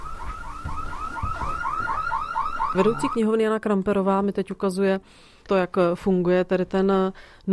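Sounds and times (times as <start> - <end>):
library anti-theft security gate alarm chirping: 0.0 - 3.2
speech: 2.8 - 7.5.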